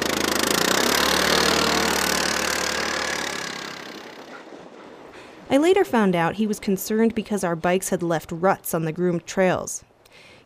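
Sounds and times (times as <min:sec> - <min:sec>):
snow trail grooming machine engine droning near a Nordic ski trail crossing: 0:00.0 - 0:04.5
speech: 0:05.5 - 0:10.3.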